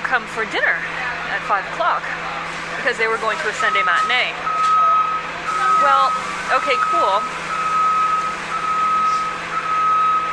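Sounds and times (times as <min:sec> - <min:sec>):
low bus engine rumble: 0:00.0 - 0:10.3
speech: 0:00.1 - 0:04.5, 0:05.8 - 0:07.4
bus warning beeps: 0:03.1 - 0:10.3.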